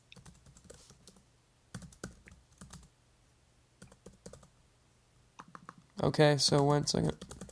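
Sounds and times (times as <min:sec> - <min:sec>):
faint steady hum: 0:00.0 - 0:07.5
typing a tweet on a computer keyboard: 0:00.1 - 0:02.9, 0:03.8 - 0:04.5, 0:06.5 - 0:07.5
speech: 0:06.0 - 0:07.4.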